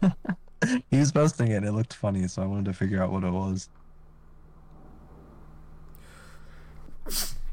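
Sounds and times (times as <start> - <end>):
speech: 0.0 - 3.8, 7.1 - 7.3
person sneezing: 7.0 - 7.5.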